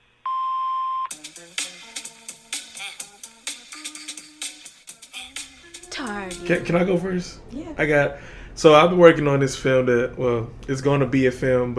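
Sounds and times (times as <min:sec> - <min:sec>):
voicemail beep tone: 0:00.3 - 0:01.1
rhythmic plucked music: 0:01.1 - 0:07.2
speech: 0:06.0 - 0:11.7.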